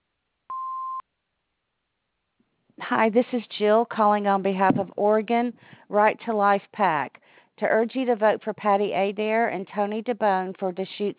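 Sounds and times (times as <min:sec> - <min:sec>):
answering machine beep: 0:00.5 - 0:01.0
speech: 0:02.8 - 0:11.1.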